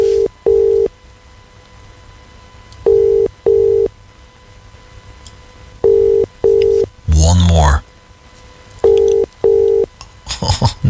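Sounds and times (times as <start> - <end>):
phone line ringback tone on outgoing call: 0.0 - 0.9, 2.9 - 3.9, 5.8 - 6.9, 8.8 - 9.9
man speaking: 7.1 - 7.9.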